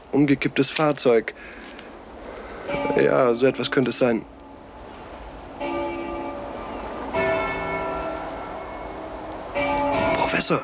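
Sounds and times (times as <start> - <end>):
steady hiss: 0.0 - 10.6
speech: 0.1 - 1.7, 2.7 - 4.4, 10.4 - 10.6
church bells ringing: 2.5 - 10.6.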